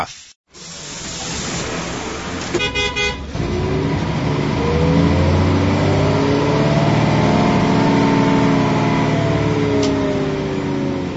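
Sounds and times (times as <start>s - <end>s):
speech: 0.0s - 0.2s
bus engine revving as the bus departs and accelerates: 0.5s - 11.1s
bus horn blast: 2.4s - 3.4s.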